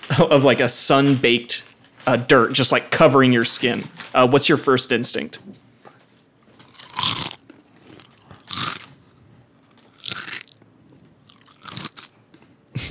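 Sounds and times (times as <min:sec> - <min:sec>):
speech: 0:00.2 - 0:05.6
crunchy chewing: 0:06.6 - 0:12.5.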